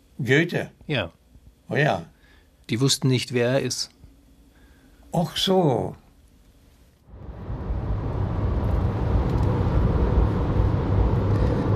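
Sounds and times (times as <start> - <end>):
speech: 0.2 - 2.1, 2.7 - 4.0, 5.1 - 6.0
road and wind noise: 7.1 - 11.7
vehicle cruising on a country road: 7.1 - 11.7.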